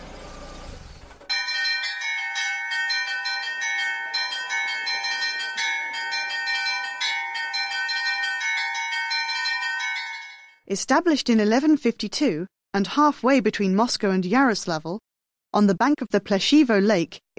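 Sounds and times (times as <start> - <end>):
large church bells ringing: 1.3 - 10.6
speech: 10.7 - 17.3.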